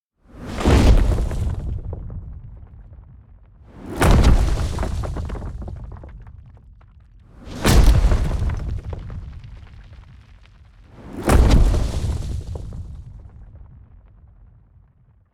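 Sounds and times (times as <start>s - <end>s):
ground shaking: 0.3s - 14.3s
dragon footsteps: 3.7s - 13.7s.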